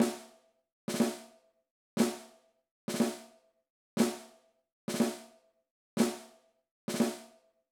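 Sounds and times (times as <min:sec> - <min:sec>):
snare drum exercise: 0:00.0 - 0:00.3, 0:00.9 - 0:01.3, 0:02.0 - 0:02.3, 0:02.9 - 0:03.2, 0:04.0 - 0:04.3, 0:06.0 - 0:06.3, 0:06.9 - 0:07.3.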